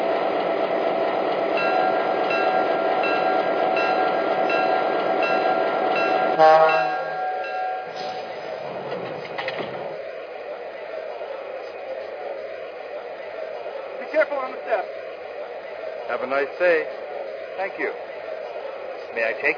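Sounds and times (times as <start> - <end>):
passenger train rumbling as it arrives at a station platform: 0.0 - 19.5
quieter ambient noise at a station platform: 0.0 - 19.5
sharp hiss and clank of a passenger train slowing: 1.6 - 9.9
speech: 16.3 - 17.0, 17.6 - 18.0, 19.2 - 19.5.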